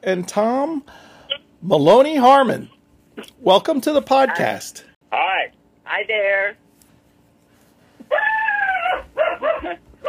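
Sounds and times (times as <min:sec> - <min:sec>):
speech: 0:00.0 - 0:04.9, 0:05.9 - 0:06.6
dog whining and barking: 0:08.0 - 0:10.0.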